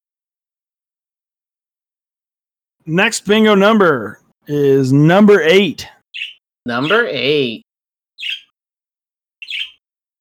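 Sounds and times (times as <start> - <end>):
speech: 2.8 - 7.6
birds chirping: 4.5 - 7.6, 8.2 - 8.6, 9.4 - 9.8.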